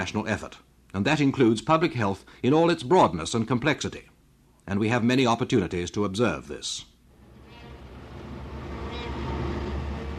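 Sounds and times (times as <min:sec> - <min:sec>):
speech: 0:00.0 - 0:04.1, 0:04.7 - 0:06.9
heavy street traffic rumble with trams and buses: 0:07.1 - 0:10.1
high-pitched horn honk of trams and buses: 0:07.2 - 0:10.1.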